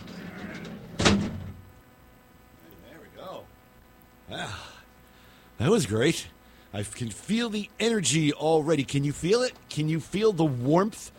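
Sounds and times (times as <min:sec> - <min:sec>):
big heavy door shutting: 0:00.0 - 0:01.6
speech: 0:05.6 - 0:11.1.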